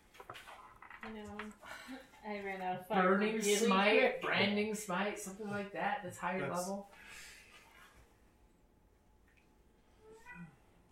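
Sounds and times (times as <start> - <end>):
speech: 1.0 - 7.2
cat meowing: 10.0 - 10.6.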